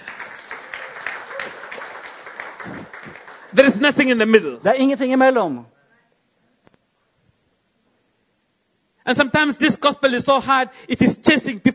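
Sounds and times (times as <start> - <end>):
audience applauding: 0.0 - 4.3
speech: 2.6 - 5.7, 9.1 - 11.7.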